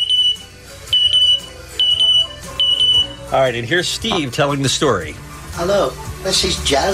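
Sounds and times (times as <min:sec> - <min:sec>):
pet bird imitating a smoke detector alarm: 0:00.0 - 0:03.2
speech: 0:03.3 - 0:06.9.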